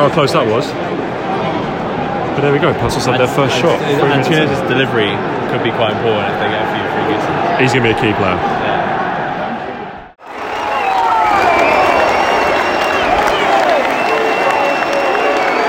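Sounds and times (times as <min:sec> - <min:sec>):
speech: 0:00.0 - 0:01.1, 0:02.4 - 0:08.6
large football stadium crowd roaring and cheering for the opening goal: 0:00.0 - 0:15.6
football stadium crowd shouting: 0:03.9 - 0:15.6
whistles in a football stadium crowd: 0:10.3 - 0:15.6.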